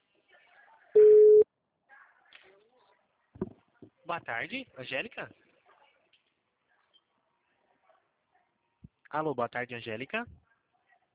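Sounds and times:
telephone ringing tone on an outgoing call to a client: 1.0 - 1.4
speech: 4.1 - 5.4, 9.1 - 10.4.

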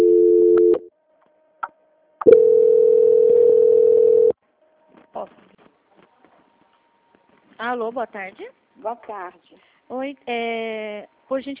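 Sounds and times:
telephone line tones during a call transfer: 0.0 - 0.9, 2.2 - 4.4
speech: 7.8 - 11.5.

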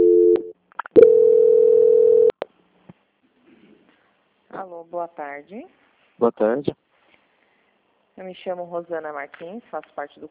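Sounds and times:
telephone tones during a call transfer: 0.0 - 2.4
speech: 4.9 - 6.8, 8.2 - 10.2.

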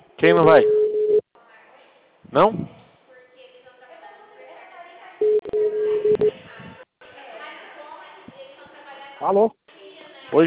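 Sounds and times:
speech: 0.2 - 0.8, 2.3 - 2.8, 9.2 - 9.6
telephone keypad tones dialing a number: 5.2 - 6.3.

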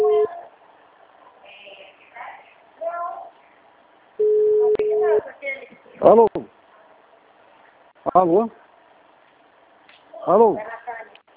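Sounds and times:
telephone ringing tone on a call: 0.0 - 0.4, 4.2 - 5.2
speech: 6.0 - 6.3, 8.2 - 8.6, 10.3 - 10.7.

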